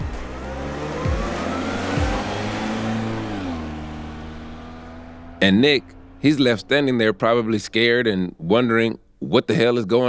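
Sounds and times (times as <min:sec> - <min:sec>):
car engine revving and accelerating away: 0:00.0 - 0:08.0
speech: 0:05.4 - 0:10.0.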